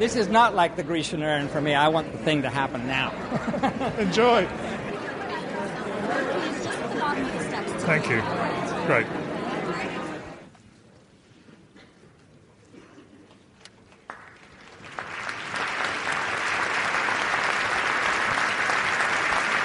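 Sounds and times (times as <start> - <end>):
speech: 0.0 - 4.8, 7.9 - 9.2
laughter: 2.7 - 10.2
audience applauding the conductor in a large hall: 13.8 - 19.6.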